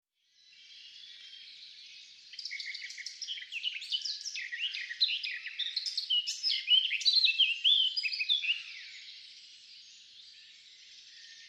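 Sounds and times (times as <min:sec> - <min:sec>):
Eurasian blackcap Sylvia atricapilla warbling song: 0:00.4 - 0:09.1.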